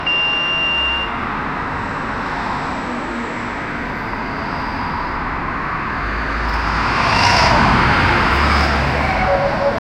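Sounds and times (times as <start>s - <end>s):
beeps from traffic: 0.0s - 1.2s
traffic: 0.0s - 9.8s.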